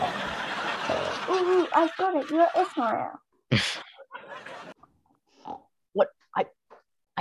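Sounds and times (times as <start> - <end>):
laughter: 0.0 - 4.8
speech: 1.4 - 3.9, 5.5 - 6.6
man standing on a table doing a pig impression: 3.5 - 3.8.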